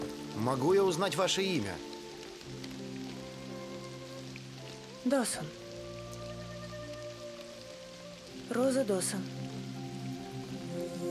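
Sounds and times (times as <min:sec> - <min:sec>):
steady rain falling outdoors: 0:00.0 - 0:11.0
speech: 0:00.4 - 0:01.9, 0:05.0 - 0:05.6, 0:08.5 - 0:09.4.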